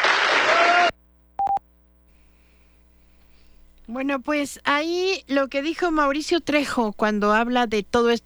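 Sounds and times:
audience applause: 0.0s - 0.9s
short electronic beeps: 1.4s - 1.6s
speech: 3.9s - 8.2s.

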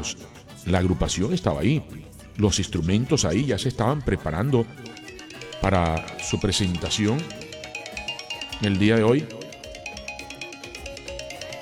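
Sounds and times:
speech: 0.0s - 5.0s, 5.6s - 7.4s, 8.6s - 9.4s
phone ringtone for an incoming video call: 4.6s - 11.6s.

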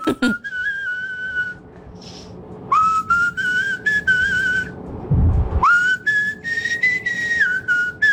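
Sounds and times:
person whistling a simple tune: 0.1s - 1.6s, 2.7s - 4.8s, 5.6s - 8.1s.

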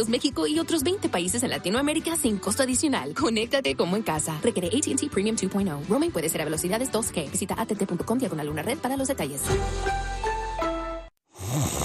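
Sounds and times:
speech: 0.0s - 10.2s
snoring: 11.3s - 11.8s.

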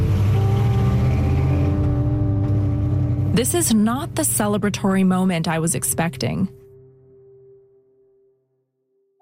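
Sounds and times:
car engine revving before pulling away: 0.0s - 6.3s
speech: 3.4s - 6.6s.

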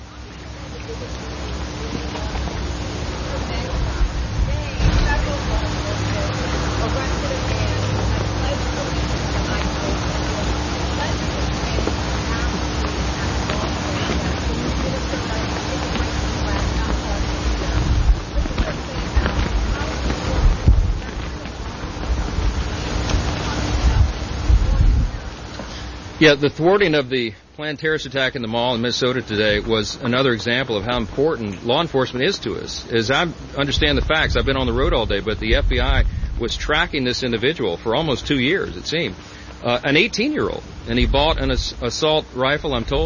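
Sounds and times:
voices murmuring: 0.0s - 43.0s
speech: 0.9s - 1.3s, 26.2s - 43.0s
wind buffeting an outdoor microphone: 1.1s - 26.2s, 33.6s - 37.0s, 40.2s - 41.8s, 42.7s - 43.0s.

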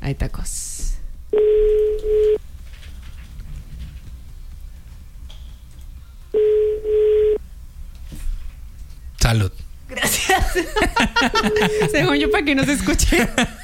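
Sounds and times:
speech: 0.1s - 1.8s, 9.3s - 9.6s, 10.6s - 13.6s
telephone tones while a number is being called: 1.3s - 2.4s, 6.4s - 7.4s, 11.4s - 12.7s
laughter: 9.9s - 13.6s.

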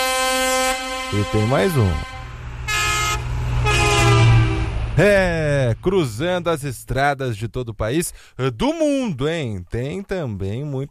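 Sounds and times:
truck horn honking: 0.0s - 5.5s
truck engine rumbling: 1.0s - 8.0s
speech: 1.1s - 2.2s, 5.0s - 10.9s.

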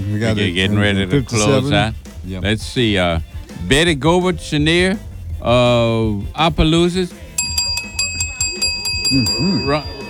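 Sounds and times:
people talking loudly: 0.0s - 5.0s, 5.6s - 10.0s
speech: 0.1s - 7.2s, 9.1s - 9.9s
bell ringing in quick strikes: 7.4s - 10.0s.

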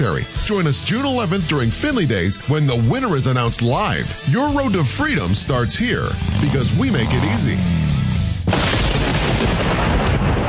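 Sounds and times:
speech: 0.0s - 7.8s
thunder from approaching storm rumbling and crashing: 8.4s - 10.4s.

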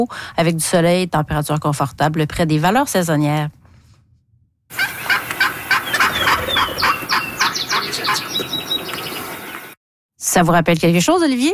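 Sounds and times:
speech: 0.0s - 3.6s, 10.3s - 11.5s
female wild turkey calling with loud raspy notes: 4.7s - 9.6s.

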